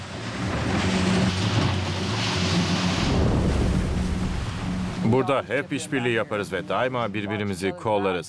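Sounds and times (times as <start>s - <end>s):
rushing water and spray against a speedboat hull: 0.0s - 8.2s
speedboat engine drone on open water: 0.0s - 8.2s
wind buffeting: 0.2s - 5.1s
speech: 5.1s - 8.2s.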